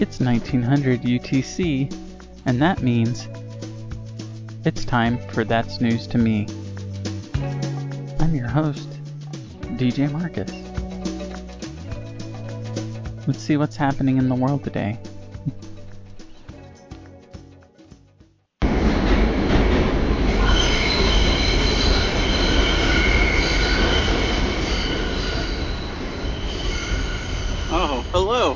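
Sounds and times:
speech: 0.0s - 3.4s, 4.6s - 6.6s, 8.2s - 8.9s, 9.8s - 10.6s, 13.3s - 15.6s
music: 0.0s - 18.6s
subway train running: 18.6s - 28.5s
subway train wheels squealing: 20.0s - 28.5s.

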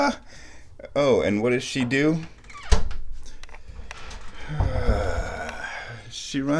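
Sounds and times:
speech: 0.0s - 2.4s, 6.1s - 6.5s
door creaking as it swings: 1.6s - 6.0s.

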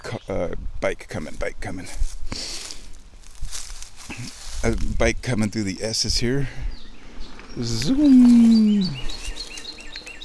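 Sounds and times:
speech: 0.3s - 2.5s, 4.2s - 6.8s, 7.6s - 9.2s
birds chirping outdoors: 4.0s - 10.2s.

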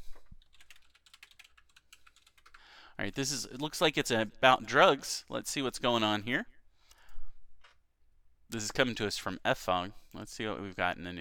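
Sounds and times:
typing on a computer keyboard: 0.4s - 2.7s
speech: 3.0s - 6.5s, 8.5s - 11.1s.

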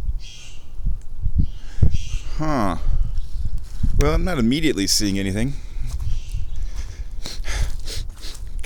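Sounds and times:
blue jays squawking in trees by a creek: 0.2s - 0.8s, 1.5s - 2.7s, 5.9s - 8.4s
speech: 2.4s - 2.9s, 4.0s - 5.6s.

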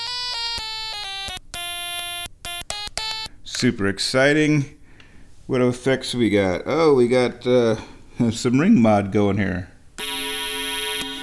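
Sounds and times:
stylophone playing dry with no effects: 0.0s - 3.3s, 10.0s - 11.2s
speech: 3.6s - 4.8s, 5.5s - 9.7s.

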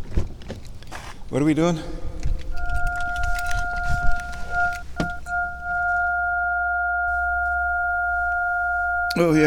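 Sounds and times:
low rumble of car noise: 0.0s - 9.4s
speech: 1.3s - 2.0s, 9.2s - 9.4s
two steady pure synthesizer sine tones at different pitches: 2.1s - 9.4s.

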